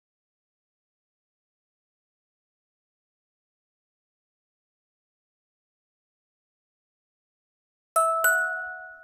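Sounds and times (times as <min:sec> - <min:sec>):
music box notes: 0:08.0 - 0:09.0.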